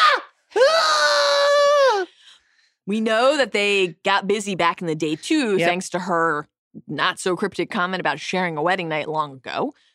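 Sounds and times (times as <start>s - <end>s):
woman's high-pitched orgasmic sex scream: 0.0s - 2.1s
speech: 2.9s - 9.9s.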